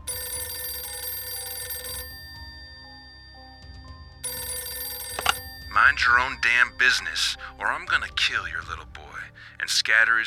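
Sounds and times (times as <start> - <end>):
old-fashioned telephone bell ringing: 0.0 - 8.0
speech: 5.8 - 9.0, 9.6 - 10.2.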